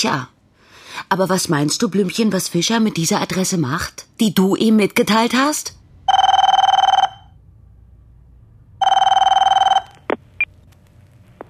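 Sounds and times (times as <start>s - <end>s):
speech: 0.0s - 0.3s, 1.0s - 5.8s
telephone ringing with electronic-sounding bursts: 6.1s - 7.4s, 8.8s - 10.2s.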